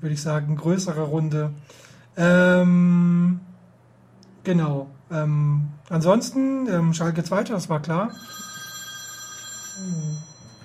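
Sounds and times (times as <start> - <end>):
speech: 0.0 - 3.5, 4.4 - 8.5, 9.8 - 10.3
telephone ringing with a high electronic tone: 8.1 - 10.6.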